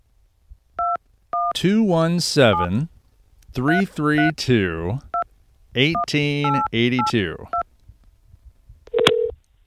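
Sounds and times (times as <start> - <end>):
person talking: 1.6 - 2.9, 3.5 - 5.1, 5.8 - 7.6
touch-tone beeps of a phone number being dialed: 4.2 - 4.4, 6.0 - 7.6.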